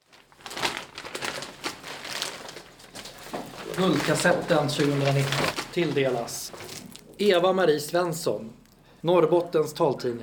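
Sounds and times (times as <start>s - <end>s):
paper crinkling as a diploma is unpacked: 0.0s - 7.4s
speech: 3.8s - 6.6s, 7.2s - 10.2s.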